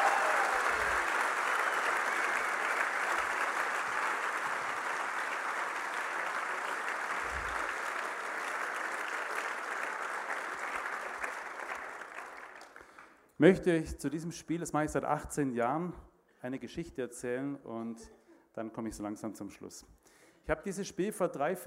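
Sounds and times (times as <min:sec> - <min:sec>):
audience applause: 0:00.0 - 0:13.2
speech: 0:13.4 - 0:21.6.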